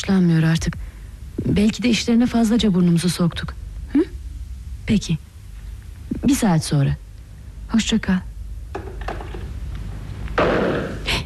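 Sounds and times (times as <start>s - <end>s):
speech: 0.0s - 4.1s, 4.9s - 5.3s, 6.2s - 7.0s, 7.7s - 8.3s
gunshot inside a house: 10.4s - 11.0s.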